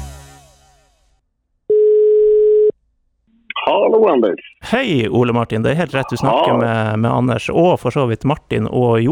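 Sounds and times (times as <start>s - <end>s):
telephone tone while a call is placed: 1.7s - 2.7s
speech: 3.9s - 9.1s.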